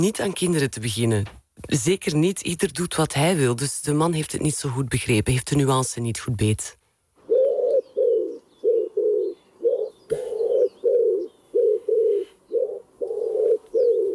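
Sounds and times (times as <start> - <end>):
speech: 0.0 - 6.8
pigeons cooing at a grandparents' home: 7.2 - 14.1
small birds chirping: 7.3 - 14.1.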